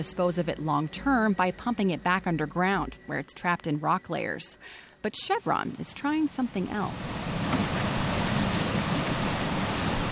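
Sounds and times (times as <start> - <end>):
speech: 0.0 - 7.5
water gushing from a 40-inch pipe at a water district near Bakersfield: 7.1 - 10.0.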